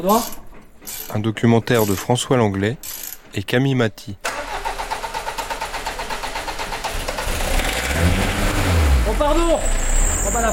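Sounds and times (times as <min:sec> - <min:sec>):
speech: 0:00.0 - 0:04.3
diesel engine cranking, starting and running: 0:04.2 - 0:10.5.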